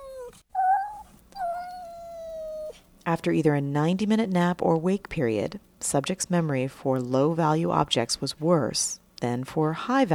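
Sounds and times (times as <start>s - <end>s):
cat meowing: 0.0s - 2.8s
speech: 3.1s - 10.1s.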